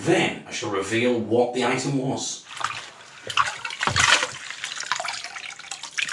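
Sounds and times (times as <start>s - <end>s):
speech: 0.0s - 3.4s
water splashing against a metal wok being scrubbed: 2.4s - 6.1s.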